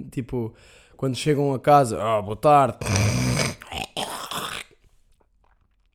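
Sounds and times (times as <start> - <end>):
speech: 0.0 - 3.3
loud exaggerated old-person style throat clearing: 2.8 - 4.7.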